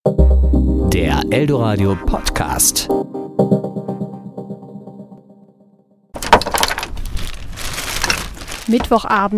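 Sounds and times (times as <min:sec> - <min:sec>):
tonal musical phrase: 0:00.0 - 0:06.2
speech: 0:01.0 - 0:03.6, 0:08.7 - 0:09.3.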